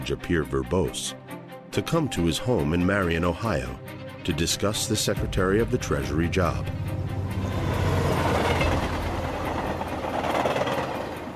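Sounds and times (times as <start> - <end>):
speech: 0.1 - 1.2, 1.8 - 7.6
train rumbling along the rails: 5.5 - 11.3.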